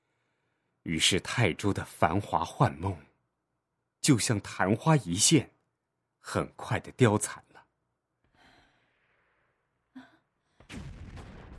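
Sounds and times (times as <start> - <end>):
speech: 0.8 - 3.1, 4.0 - 5.6, 6.2 - 7.5
distant artillery fire: 10.7 - 11.5.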